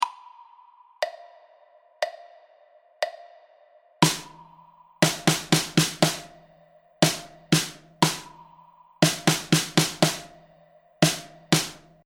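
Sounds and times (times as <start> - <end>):
drum stroke: 4.0 - 6.4, 7.0 - 10.4, 11.0 - 12.0.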